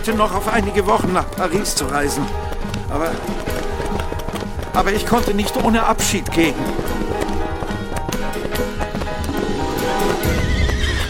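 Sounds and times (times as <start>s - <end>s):
speech: 0.0s - 4.0s, 4.8s - 7.0s
horses galloping side by side: 0.0s - 11.0s
horse whinny: 9.3s - 11.0s.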